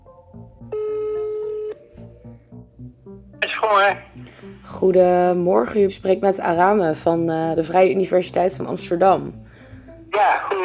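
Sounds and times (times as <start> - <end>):
low rhythmic musical bed: 0.0 - 10.6
steady telephone tone of a placed call: 0.6 - 1.9
telephone dialing and ringing for a call: 0.7 - 1.8
speech: 3.7 - 9.4.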